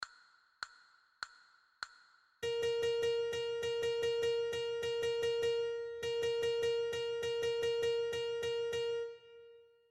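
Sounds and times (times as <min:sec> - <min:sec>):
recorder playing B flat: 0:02.4 - 0:09.6.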